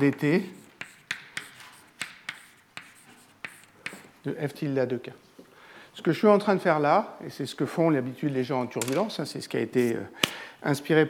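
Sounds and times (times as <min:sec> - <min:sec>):
speech: 0:00.0 - 0:00.6, 0:04.2 - 0:05.2, 0:06.0 - 0:11.0
strokes writing an equation on a board during a physics lecture: 0:00.0 - 0:04.2.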